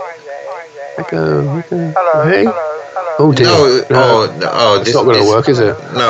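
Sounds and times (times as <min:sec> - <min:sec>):
caller's tinny phone-line voice with heavy echo: 0:00.0 - 0:06.0
speech: 0:00.2 - 0:06.0.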